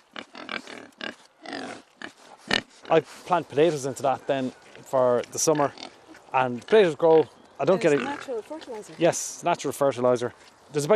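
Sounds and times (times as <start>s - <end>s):
pigs grunting and snorting: 0.0s - 7.0s, 7.7s - 8.9s
speech: 2.9s - 10.9s.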